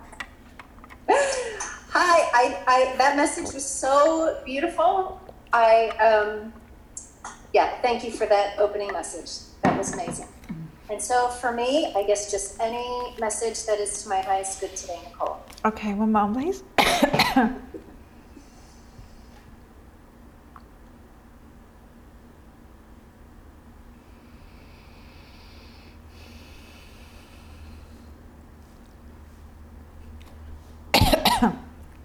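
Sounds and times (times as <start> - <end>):
speech: 2.0 - 6.6, 7.6 - 10.3, 10.9 - 17.7
throat clearing: 10.5 - 10.8, 31.0 - 31.7
coughing: 16.8 - 17.9, 30.9 - 31.7.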